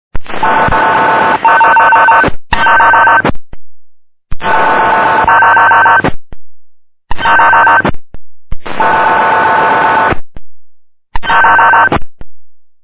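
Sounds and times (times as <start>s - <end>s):
1721 MHz signal: 0.2s - 3.4s, 4.3s - 6.2s, 7.1s - 8.0s, 8.6s - 10.2s, 11.2s - 12.1s.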